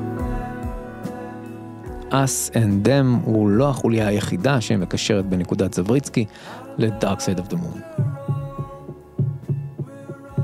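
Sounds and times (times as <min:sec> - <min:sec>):
speech: 0:02.1 - 0:08.1
deep heartbeat thumping in double pulses: 0:08.0 - 0:10.4.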